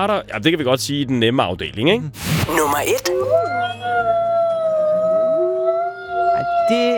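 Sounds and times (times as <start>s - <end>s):
speech: 0.0s - 4.3s, 6.7s - 6.9s
pack of wolves howling: 3.0s - 6.9s.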